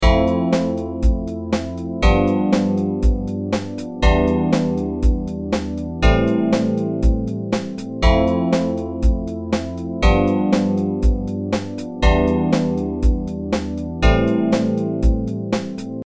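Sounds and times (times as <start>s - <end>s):
chord progression: 0.0s - 16.0s.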